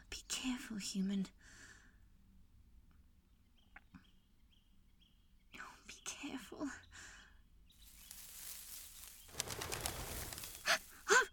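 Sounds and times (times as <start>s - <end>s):
speech: 0.4s - 1.6s
quail flushing with whirring wingbeats: 7.8s - 11.1s.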